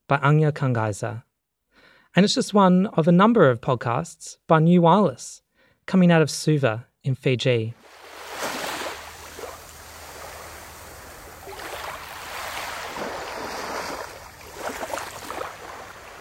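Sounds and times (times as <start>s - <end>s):
speech: 0.1s - 1.3s, 2.1s - 7.9s
breaking surf: 7.8s - 16.2s
sea waves surging: 7.8s - 16.2s.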